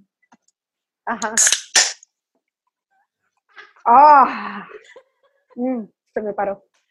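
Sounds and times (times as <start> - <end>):
speech: 1.1 - 1.6, 3.9 - 5.0, 5.6 - 6.8
gas hissing from an opened 710 cc beer can: 1.4 - 2.0.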